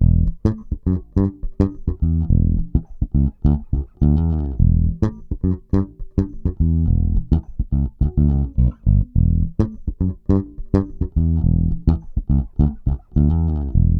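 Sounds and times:
electric bass loop in E at 105 BPM: 0.0 - 13.9.

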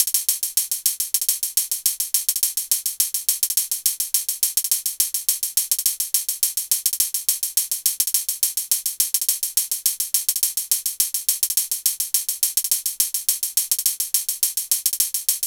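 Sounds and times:
hi-hat drum loop: 0.0 - 15.4.

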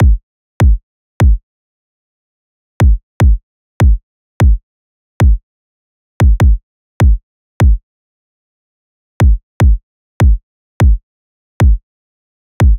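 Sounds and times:
pop kick drum loop: 0.0 - 1.4, 2.8 - 4.6, 6.2 - 7.8, 9.2 - 11.0, 11.6 - 11.8, 12.6 - 12.7.

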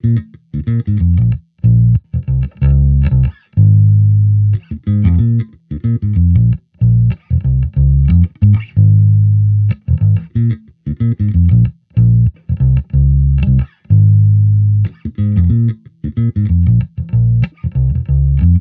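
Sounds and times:
amped electric bass loop in Bbm: 0.0 - 18.5.

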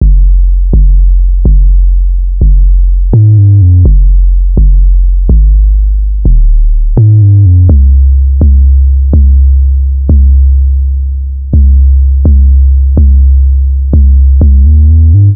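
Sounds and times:
synth bass loop in B minor: 0.0 - 15.3.

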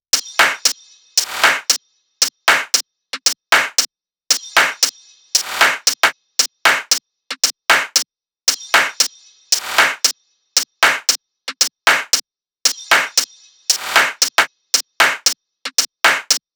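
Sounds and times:
drum top loop: 0.0 - 16.5.

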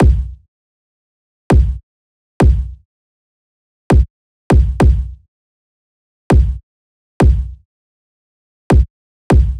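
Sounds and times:
pop kick drum loop: 0.0 - 0.4, 1.5 - 1.8, 2.4 - 2.8, 3.9 - 5.2, 6.3 - 6.6, 7.2 - 7.6, 8.7 - 9.5.

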